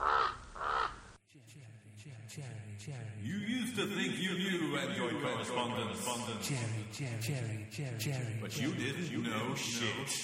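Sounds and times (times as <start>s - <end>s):
raven cawing: 0.0s - 1.2s
speech: 2.0s - 10.2s.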